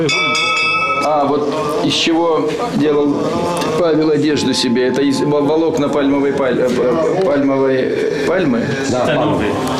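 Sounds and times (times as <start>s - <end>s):
small hand bell ringing: 0.1s - 1.5s
speech: 1.9s - 9.7s.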